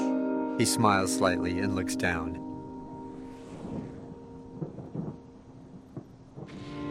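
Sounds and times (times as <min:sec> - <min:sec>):
speech: 0:00.6 - 0:02.5
thunder rumbling during a thunderstorm: 0:02.4 - 0:06.8
thunder cracks: 0:02.9 - 0:06.8.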